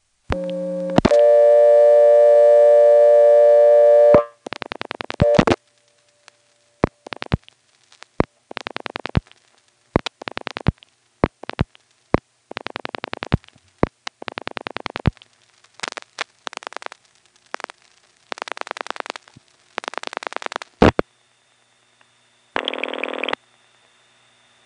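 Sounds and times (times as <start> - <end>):
telephone dial tone: 0.3 - 4.3, 5.2 - 5.6, 22.6 - 23.4
rapid telephone dialing clicks: 8.5 - 9.3, 10.0 - 11.8, 12.5 - 20.7.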